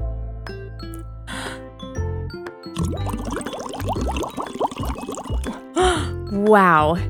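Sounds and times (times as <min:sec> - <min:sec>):
soft music: 0:00.0 - 0:07.0
short breathy puffs: 0:01.3 - 0:01.6
blowing through a straw into soapy water: 0:02.8 - 0:06.2
speech: 0:05.8 - 0:07.0.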